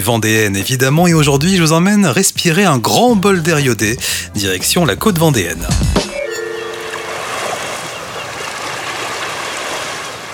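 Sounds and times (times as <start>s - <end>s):
speech: 0.0s - 6.3s
faint tonal hum: 6.2s - 7.6s
ocean surf washing in: 6.2s - 10.3s.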